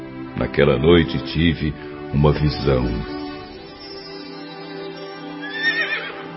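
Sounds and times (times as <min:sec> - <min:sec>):
speech: 0:00.4 - 0:03.2
horse neighing: 0:05.4 - 0:06.2.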